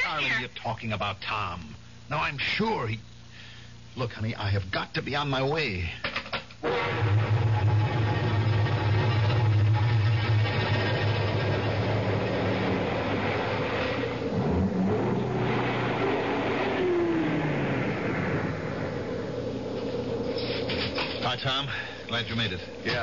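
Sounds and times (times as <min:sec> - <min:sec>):
speech: 0:00.2 - 0:03.1, 0:03.9 - 0:07.3, 0:21.4 - 0:23.0
car engine rumbling while driving: 0:07.0 - 0:23.0
road noise: 0:10.5 - 0:22.8.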